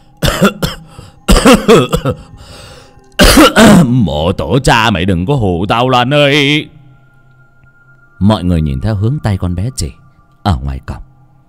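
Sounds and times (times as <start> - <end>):
man coughing hard and choking on water: 0.2 - 2.3, 3.2 - 3.9
speech: 0.4 - 0.7, 1.5 - 2.7, 3.4 - 6.8, 8.2 - 11.1.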